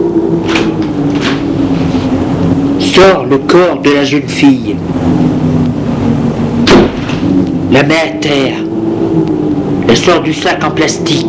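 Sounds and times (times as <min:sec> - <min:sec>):
low engine-like hum: 0:00.0 - 0:11.2
car trunk latch and lid opening: 0:00.4 - 0:01.5
speech: 0:03.0 - 0:05.5, 0:07.7 - 0:08.6, 0:09.2 - 0:11.2.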